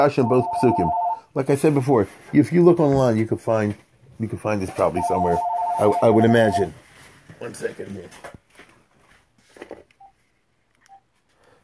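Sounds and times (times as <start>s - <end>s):
phone giving short quiet electronic beeps: 0.0s - 1.2s, 4.7s - 6.7s
speech: 0.0s - 8.4s
rustling handling noise: 1.5s - 11.4s.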